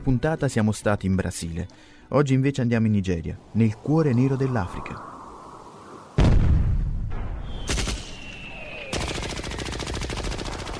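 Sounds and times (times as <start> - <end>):
speech: 0.0 - 5.1
heavy blast: 6.2 - 8.0
rapid gunfire in Nigeria: 8.9 - 10.7.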